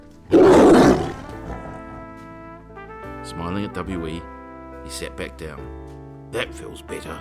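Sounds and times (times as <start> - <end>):
tiger roaring: 0.3 - 2.2
speech: 3.3 - 7.1.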